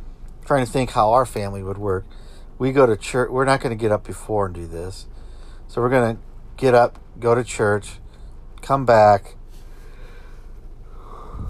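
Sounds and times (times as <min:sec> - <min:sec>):
speech: 0:00.5 - 0:05.1, 0:05.7 - 0:08.0, 0:08.6 - 0:09.4
person yawning: 0:11.0 - 0:11.4.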